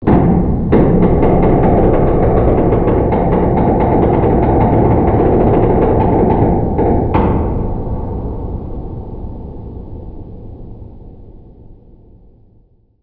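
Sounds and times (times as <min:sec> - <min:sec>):
low ship creak: 0:00.1 - 0:09.0.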